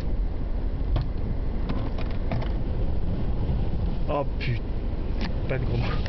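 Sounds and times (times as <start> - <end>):
strong storm wind roaring around a stationary car: 0.0 - 6.0
creaks and knocks from the car bodywork in storm wind: 0.9 - 2.6
speech: 4.2 - 4.7, 5.5 - 6.0.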